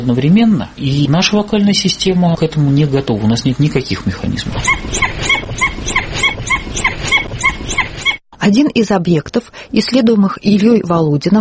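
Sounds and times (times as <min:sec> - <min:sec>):
speech: 0:00.0 - 0:05.3, 0:08.4 - 0:11.4
noisy background: 0:00.0 - 0:11.4
dhole whistling yelps with two frequencies: 0:04.5 - 0:08.2.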